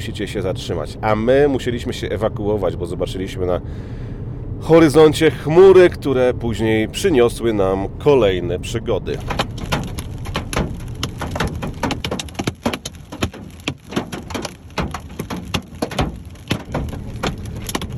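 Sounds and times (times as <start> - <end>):
speech: 0.0 - 9.6
heavy rain in a powerful downpour: 9.1 - 17.9
ping-pong-ball-sized hailstones pounding hard surfaces: 9.1 - 17.9.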